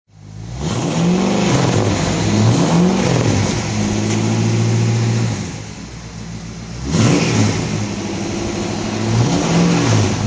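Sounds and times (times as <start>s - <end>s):
Chevrolet Impala SS: 0.1s - 10.2s.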